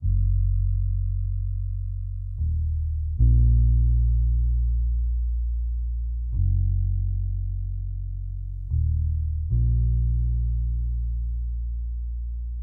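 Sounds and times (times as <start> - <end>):
lofi bass melody loop in A# minor at 76 BPM: 0.0 - 12.6.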